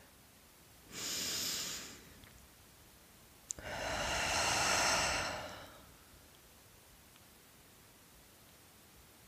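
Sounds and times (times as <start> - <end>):
deep breath during a calm self-reflection exercise: 0.9 - 2.2, 3.6 - 6.1.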